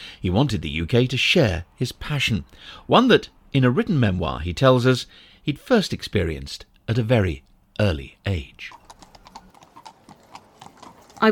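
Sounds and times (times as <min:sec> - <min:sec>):
speech: 0:00.2 - 0:08.8
horse hooves clip-clopping on a hard street, horse-drawn cart trotting: 0:08.6 - 0:11.2.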